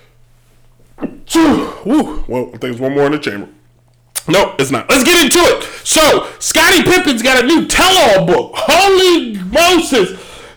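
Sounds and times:
person sneezing: 1.0s - 2.3s
speech: 1.5s - 3.6s, 4.2s - 10.5s.

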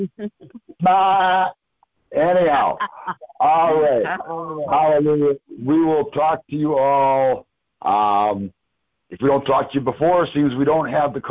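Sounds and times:
speech: 0.0s - 11.2s
human voice imitating a sheep bleat: 0.8s - 1.5s, 2.4s - 4.9s.

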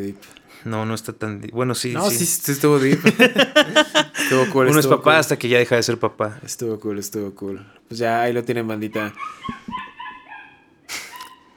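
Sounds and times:
speech: 0.0s - 9.8s
laughter: 2.0s - 5.4s, 8.9s - 10.1s
dogs fighting, snarling and barking: 9.1s - 11.5s.

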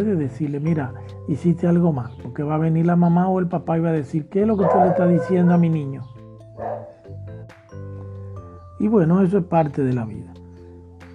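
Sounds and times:
speech: 0.0s - 6.7s, 8.8s - 10.4s
dogs at a house barking and yelping: 4.5s - 7.2s.

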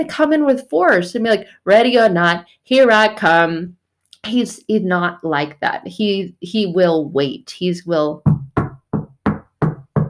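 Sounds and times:
speech: 0.0s - 8.4s
firm knocks on a door: 8.2s - 10.0s.

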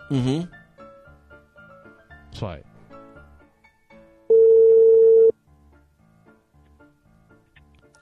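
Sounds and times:
speech: 0.1s - 0.6s, 2.3s - 2.7s
phone call ringback tone beep: 4.3s - 5.3s.

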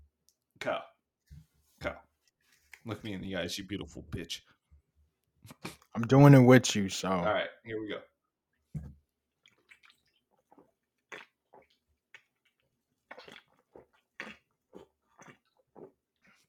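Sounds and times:
speech: 0.6s - 0.9s, 1.8s - 2.0s, 2.8s - 4.5s, 5.4s - 8.1s
wet slurping and smacking: 5.4s - 6.0s, 9.4s - 16.4s.

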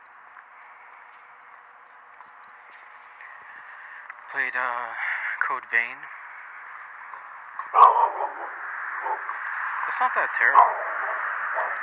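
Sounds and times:
steady hum: 0.0s - 11.8s
speech: 4.3s - 6.2s, 9.9s - 10.9s
dog barking: 7.7s - 9.4s, 10.5s - 11.8s.

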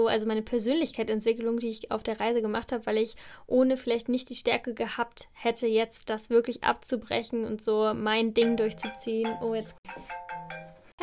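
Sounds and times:
speech: 0.0s - 11.0s
mobile phone ringtone electronic melody: 8.4s - 10.9s.

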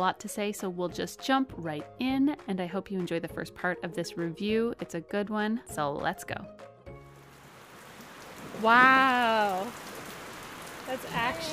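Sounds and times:
speech: 0.0s - 6.7s, 8.6s - 9.9s, 10.9s - 11.5s
heavy rain pattering on a hard surface outside a garage: 7.2s - 11.5s.

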